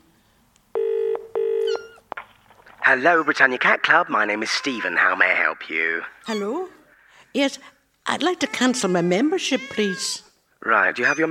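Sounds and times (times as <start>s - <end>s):
telephone ringing tone on a call placed by a pensioner: 0.7s - 2.0s
speech: 2.9s - 11.2s.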